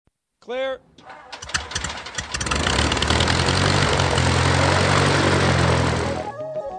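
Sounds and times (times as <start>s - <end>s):
speech: 0.4s - 1.3s
propeller-plane engine roaring: 1.3s - 6.3s.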